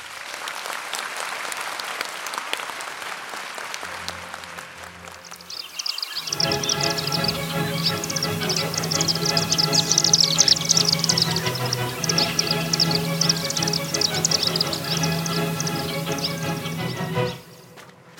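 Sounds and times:
steady applause: 0:00.0 - 0:17.4
dusky needletail swifts giving shrill twittering calls: 0:05.3 - 0:17.6.

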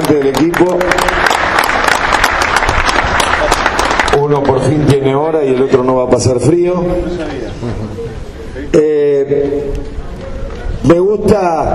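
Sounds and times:
audience applauding at an auction: 0:00.0 - 0:04.6
speech: 0:00.1 - 0:01.2, 0:04.3 - 0:09.9, 0:10.8 - 0:11.7.

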